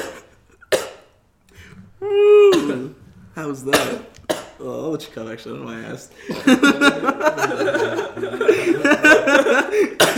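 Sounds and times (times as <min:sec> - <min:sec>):
man coughing: 0:00.0 - 0:01.2, 0:02.4 - 0:03.0, 0:03.7 - 0:04.6, 0:08.6 - 0:10.1
speech: 0:02.0 - 0:10.1
man chuckling breathily: 0:06.3 - 0:10.1.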